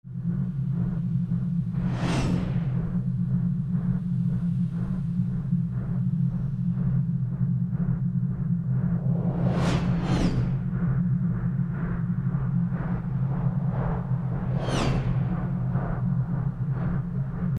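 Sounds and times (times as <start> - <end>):
sci-fi military field ambience: 0.7 - 17.5
military jets: 8.8 - 17.5.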